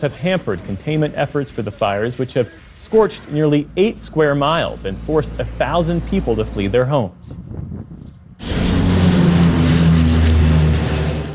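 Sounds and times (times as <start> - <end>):
speech: 0.0 - 8.6
low-flying water-dumping firefighting propeller plane droning overhead near Paris: 8.4 - 11.3.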